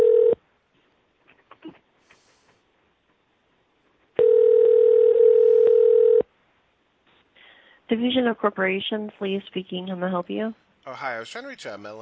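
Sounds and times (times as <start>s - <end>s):
telephone dial tone while placing a call: 0.0s - 0.4s, 4.2s - 6.2s
speech: 7.9s - 12.0s.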